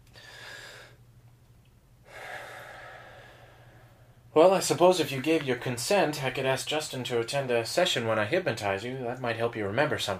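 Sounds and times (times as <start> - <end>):
deep breathing during a hypnosis session: 0.0 - 1.1, 2.0 - 4.3
low steady hum: 0.0 - 10.1
speech: 4.4 - 10.1.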